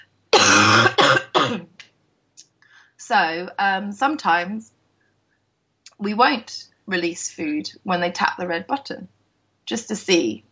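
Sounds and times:
person coughing harshly: 0.4 - 1.7
speech: 3.1 - 4.8, 6.0 - 10.5.

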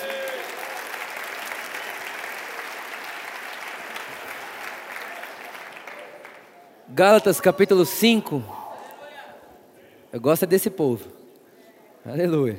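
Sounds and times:
crowd applauding: 0.0 - 8.1
speech: 6.9 - 8.6, 10.1 - 11.2, 12.0 - 12.5.

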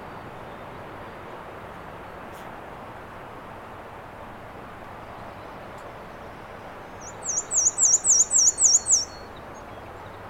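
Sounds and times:
light background noise: 0.0 - 10.2
black-and-white warbler song: 5.0 - 10.2.

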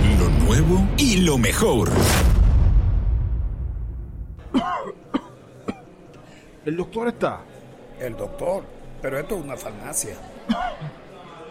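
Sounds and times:
loud booming burst: 0.0 - 4.4
speech: 0.5 - 2.3, 6.6 - 11.0
person coughing: 4.4 - 5.8, 10.5 - 10.9.

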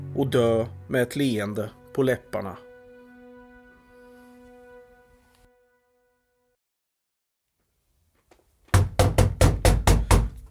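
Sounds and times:
speech: 0.2 - 2.7
loud heavy banging on a studio door: 8.7 - 10.4.

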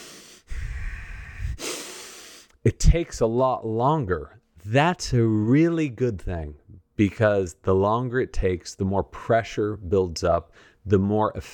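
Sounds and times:
long nasal inhale: 0.0 - 2.6
speech: 2.6 - 11.5.

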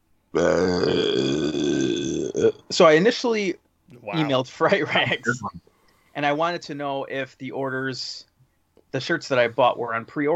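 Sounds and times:
speech: 0.4 - 1.8, 2.4 - 8.3, 8.9 - 10.3
long loud rumbling burp: 0.4 - 2.6.

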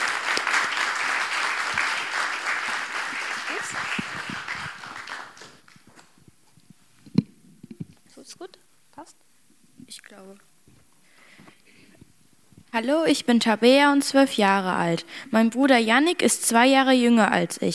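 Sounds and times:
audience applauding with dense steady clapping: 0.0 - 6.2
speech: 12.8 - 17.7.

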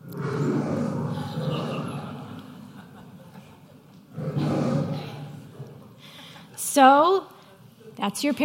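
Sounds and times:
lion roaring: 0.0 - 2.9, 4.1 - 6.0
laughter: 1.1 - 4.1
speech: 6.8 - 7.3, 8.0 - 8.4.

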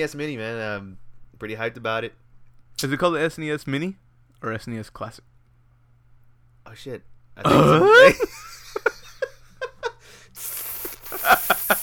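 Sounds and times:
speech: 0.0 - 2.2, 2.8 - 5.3, 6.6 - 8.9
people laughing: 7.8 - 10.0
bright steady sizzling hiss: 10.2 - 11.8
short vocal bursts: 10.4 - 11.8.

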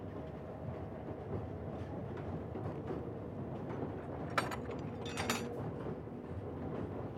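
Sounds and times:
subway train at Coney Island, New York rumbling along rails: 0.0 - 7.1.

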